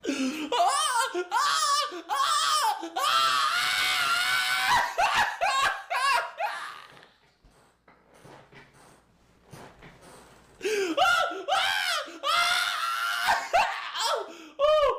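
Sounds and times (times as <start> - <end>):
laughing scream: 0.5 - 7.1, 10.6 - 14.9.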